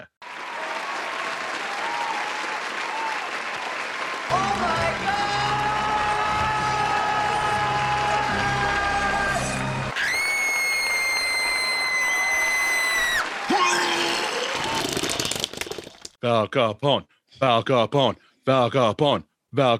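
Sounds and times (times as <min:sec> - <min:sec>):
crowd applauding: 0:00.3 - 0:15.9
speech: 0:16.5 - 0:19.7.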